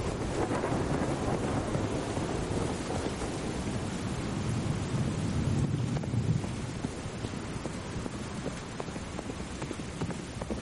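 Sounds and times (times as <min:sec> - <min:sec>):
wind and rain storm at night: 0:00.0 - 0:10.6
horse hoofbeats on a muddy road: 0:05.9 - 0:10.6.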